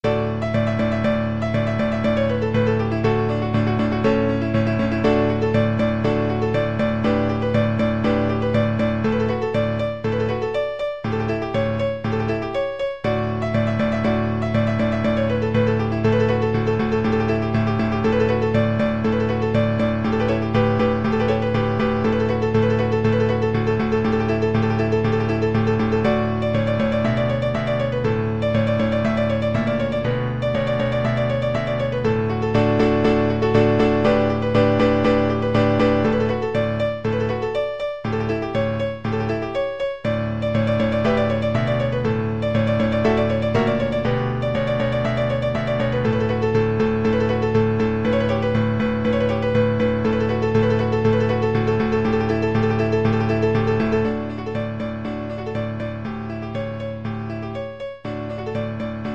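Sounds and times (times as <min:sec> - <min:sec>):
piano piece: 0:00.0 - 0:59.1.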